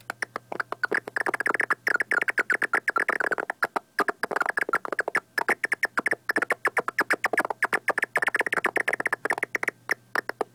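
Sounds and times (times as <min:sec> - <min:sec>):
big brown bat clicking calls: 0:00.0 - 0:10.5.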